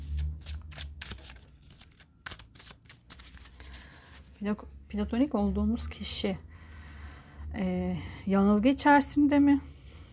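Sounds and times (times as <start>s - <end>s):
deck of tarot cards being shuffled: 0.0s - 4.4s
speech: 4.4s - 6.5s, 7.6s - 9.7s.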